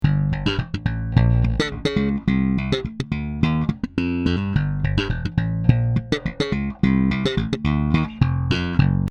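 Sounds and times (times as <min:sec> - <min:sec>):
slap bass: 0:00.0 - 0:09.0.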